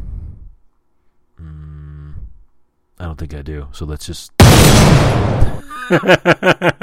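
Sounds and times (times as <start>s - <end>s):
speech: 3.0s - 4.4s, 5.0s - 6.8s
cartoonish gunshot sound effect: 4.4s - 5.6s
laughter: 5.4s - 6.8s.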